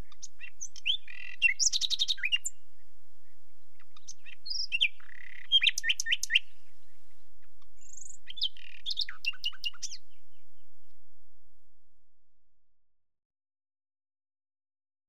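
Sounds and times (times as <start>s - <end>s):
common nightingale delivering varied song phrases: 0.0s - 11.4s.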